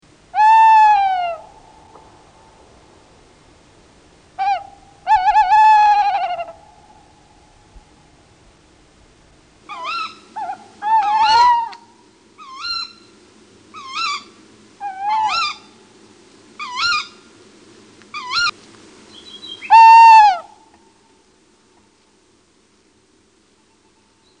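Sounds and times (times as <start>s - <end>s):
tawny owl: 0.3s - 2.2s, 4.4s - 8.0s, 9.6s - 15.8s, 16.6s - 17.3s, 18.1s - 21.1s.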